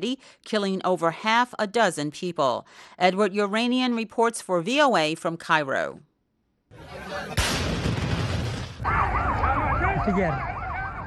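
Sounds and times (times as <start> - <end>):
speech: 0.0 - 6.1, 6.7 - 7.7, 10.0 - 10.5
laughter: 6.7 - 7.4
emergency siren wailing: 8.8 - 11.0.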